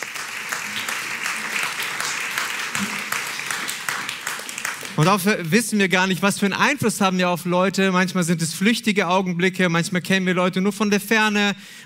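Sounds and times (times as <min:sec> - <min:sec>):
audience applause: 0:00.0 - 0:05.3
speech: 0:05.0 - 0:11.8.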